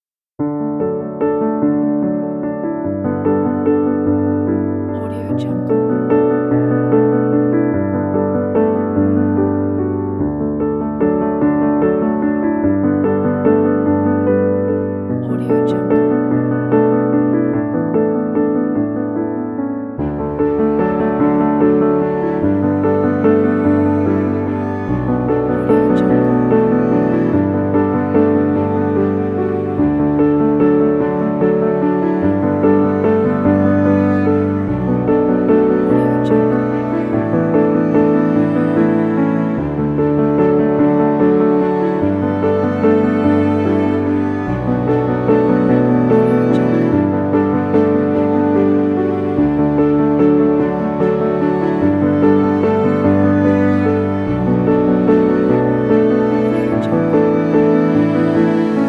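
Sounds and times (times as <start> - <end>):
emotional piano: 0.4 - 58.8
beautiful strings: 0.7 - 19.2, 19.9 - 58.8.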